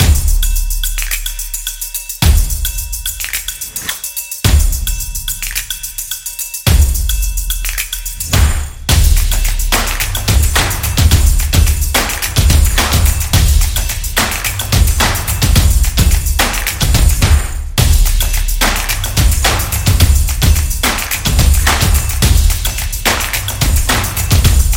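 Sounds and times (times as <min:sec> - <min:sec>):
drumming: 0:00.0 - 0:24.7
clapping: 0:03.2 - 0:04.0, 0:05.4 - 0:05.7, 0:07.6 - 0:08.6, 0:09.2 - 0:17.4, 0:18.3 - 0:24.3.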